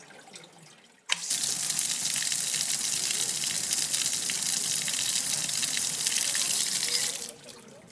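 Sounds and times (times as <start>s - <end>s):
water flowing from a 16th-century stone town fountain: 1.2s - 7.4s.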